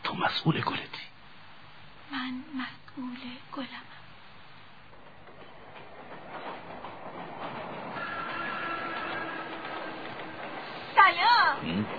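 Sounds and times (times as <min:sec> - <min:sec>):
speech: 0:00.2 - 0:01.1, 0:02.3 - 0:03.9
train rolling by on rails: 0:02.4 - 0:11.9
sharp wavering metallic squeal: 0:07.3 - 0:11.0.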